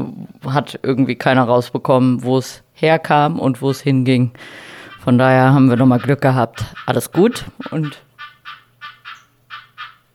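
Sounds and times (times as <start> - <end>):
speech: 0.0 - 8.1
frog croaking: 4.7 - 10.1.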